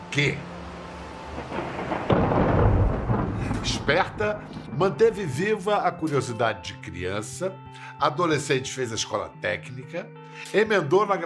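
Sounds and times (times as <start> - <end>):
steady hiss of rain in a forest thunderstorm: 0.0 - 4.7
speech: 0.2 - 0.5, 3.6 - 11.2
thunder crack and rumble from a thunderstorm in a forest: 0.9 - 5.4.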